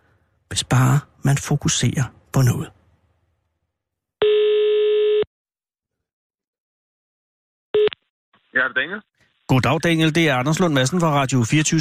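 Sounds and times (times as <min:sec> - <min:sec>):
speech: 0:00.5 - 0:02.8, 0:08.7 - 0:11.8
telephone ringback tone on an outgoing call: 0:04.2 - 0:05.3.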